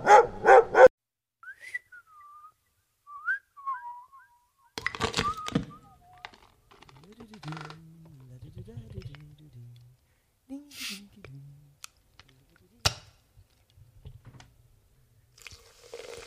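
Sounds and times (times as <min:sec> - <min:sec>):
dog barking: 0:00.0 - 0:00.9
light whistled tune: 0:01.4 - 0:06.4.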